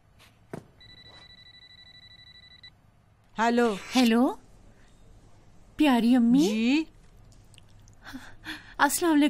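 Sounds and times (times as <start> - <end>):
faint noise: 0.0 - 9.2
telephone ringing with a warbling electronic trill: 0.8 - 2.7
speech: 3.4 - 4.4, 5.8 - 6.9, 8.1 - 9.2.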